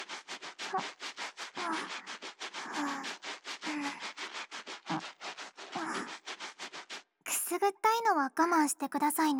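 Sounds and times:
scrubbing an armpit while washing: 0.0s - 7.2s
speech: 0.7s - 1.0s, 7.6s - 9.3s.

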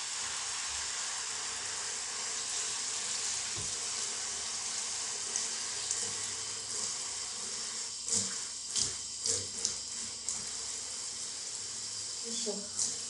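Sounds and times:
shower running to warm up: 0.0s - 13.0s
knocks and splashes: 3.6s - 3.8s.

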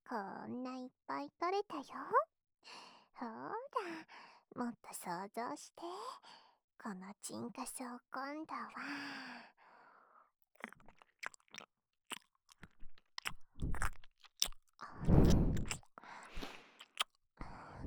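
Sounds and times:
speech: 0.1s - 9.5s
close-to-the-ear chewing and wet mouth sounds in ASMR roleplay: 10.6s - 17.2s
crunching and biting: 10.6s - 17.2s.

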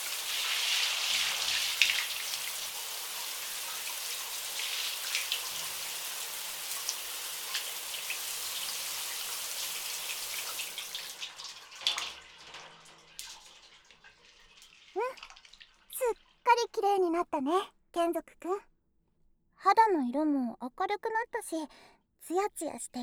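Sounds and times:
hot bathwater pouring and splashing over a body: 0.0s - 16.4s
speech: 17.2s - 18.7s, 19.6s - 23.0s.

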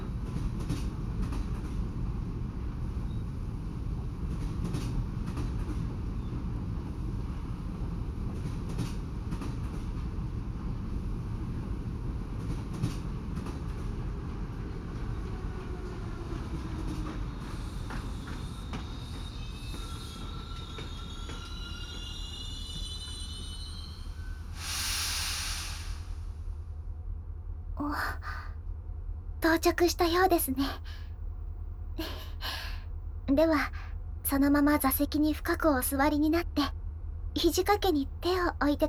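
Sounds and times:
train rolling along rails: 0.0s - 38.8s
train wheels squealing: 17.4s - 24.9s
hissing burst: 24.6s - 26.2s
speech: 29.5s - 31.0s, 33.4s - 36.8s, 37.4s - 38.8s.

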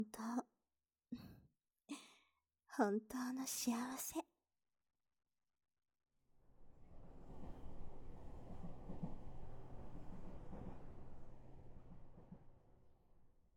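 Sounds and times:
speech: 0.0s - 0.5s, 2.8s - 4.3s
train rolling slowly along the tracks: 6.6s - 13.2s.

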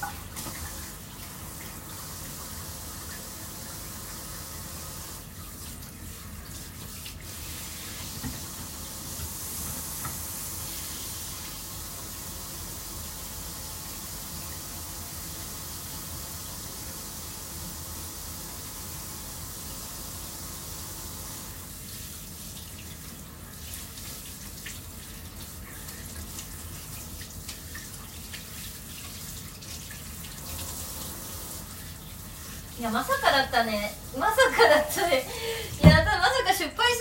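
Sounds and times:
tap water running at a bathroom sink during washing: 0.0s - 36.4s
speech: 32.8s - 35.9s.

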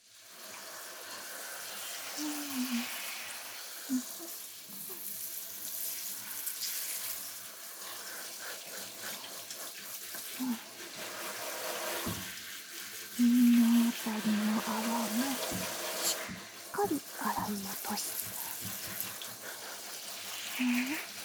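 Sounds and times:
hot water running from a tap rinsing shampoo out of hair: 0.0s - 21.2s.

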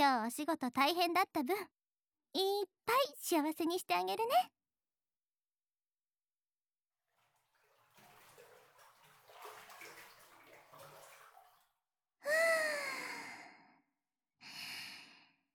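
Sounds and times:
speech: 0.0s - 4.6s
water sloshing and splashing as someone gets into a hot bath: 7.0s - 11.8s
person sighing relaxed: 12.3s - 13.6s.

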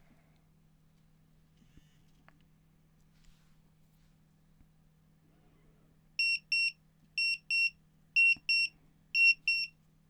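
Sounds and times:
countdown timer alarm double-beeps: 6.2s - 9.7s.

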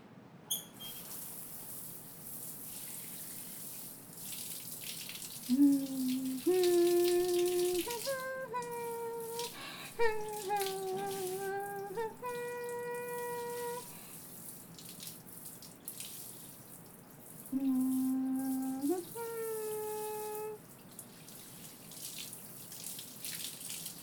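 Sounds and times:
running water rinsing hair: 0.8s - 24.0s
person humming a short melody: 5.5s - 14.0s, 17.5s - 20.6s.

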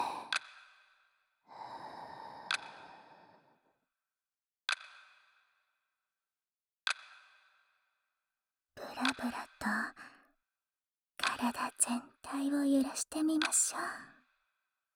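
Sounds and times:
slow breaths in and out during a guided relaxation exercise: 1.5s - 3.8s
sharp clicks: 2.5s - 2.8s
speech: 9.0s - 10.1s, 11.4s - 14.1s.

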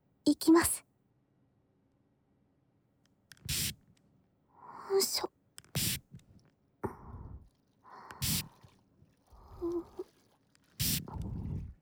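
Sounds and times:
speech: 0.3s - 0.9s, 4.9s - 5.4s
faint clicks: 3.1s - 4.1s, 5.1s - 7.0s, 7.9s - 8.7s, 9.3s - 11.7s
cleaning liquid spray hissing: 3.5s - 3.7s, 5.8s - 6.0s, 8.2s - 8.5s, 10.8s - 11.6s.

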